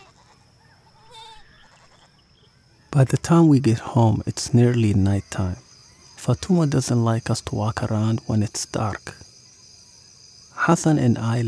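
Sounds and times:
neighborhood goat bleating: 0.0 - 0.4, 1.0 - 2.2
speech: 3.0 - 5.6, 6.2 - 9.2, 10.6 - 11.4.

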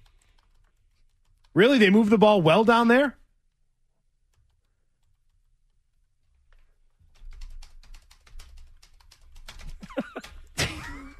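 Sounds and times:
someone typing on a computer keyboard during a live television broadcast: 0.0 - 1.6, 4.2 - 10.6
speech: 1.6 - 3.2.

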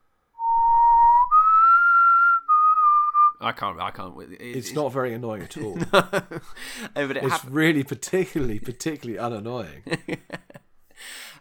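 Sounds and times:
person whistling a creepy villain's motif from a film: 0.4 - 3.4
speech: 3.4 - 10.4, 11.0 - 11.3
laughter: 4.6 - 7.8, 9.7 - 10.7
short breaths: 6.4 - 7.0, 10.9 - 11.3.

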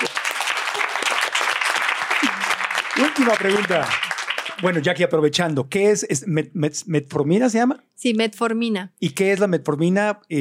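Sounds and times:
crowd clapping: 0.0 - 5.4
speech: 3.0 - 4.0, 4.6 - 10.4.

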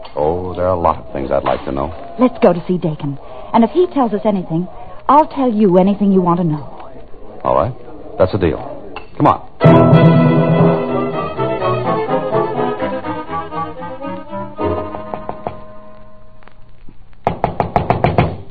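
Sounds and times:
speech: 0.6 - 6.7, 7.4 - 10.1
dramatic music: 9.6 - 16.0
knocking on a door: 17.2 - 18.4.

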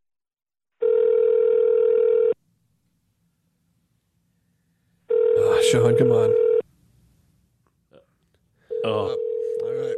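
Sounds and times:
telephone tone while placing a call: 0.8 - 2.4, 5.1 - 6.6, 8.7 - 9.9
speech: 5.7 - 6.5.

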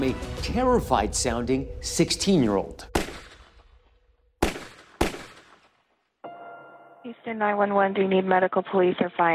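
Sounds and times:
speech: 0.0 - 2.9, 7.3 - 9.3
loud sharp gunshots with echo: 2.9 - 3.8, 4.4 - 5.8.

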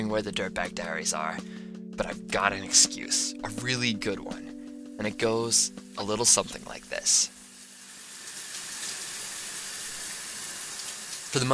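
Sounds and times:
speech: 0.0 - 7.4, 11.3 - 11.5
shower water running in a hotel room in Canada: 5.2 - 11.5.

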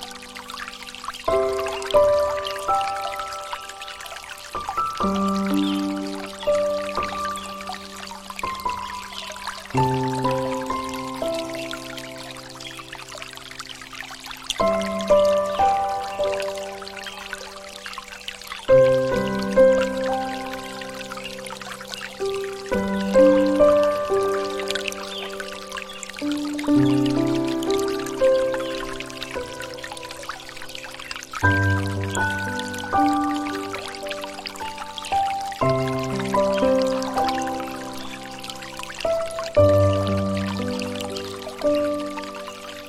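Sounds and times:
bright hiss of running water like a stream: 0.0 - 42.8
gentle piano chords in low and middle range: 0.0 - 42.8.

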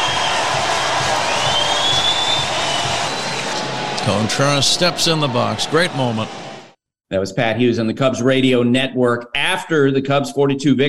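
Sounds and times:
faint whistle: 0.0 - 3.4
large baseball stadium crowd applauding and cheering in a standing ovation: 0.0 - 6.8
speech: 4.1 - 6.4, 7.1 - 10.8.

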